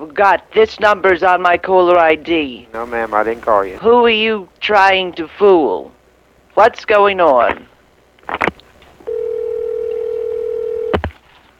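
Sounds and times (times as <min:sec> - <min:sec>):
speech: 0:00.2 - 0:06.0, 0:06.6 - 0:07.7
steady single-pitched telephone line tone: 0:09.0 - 0:11.0.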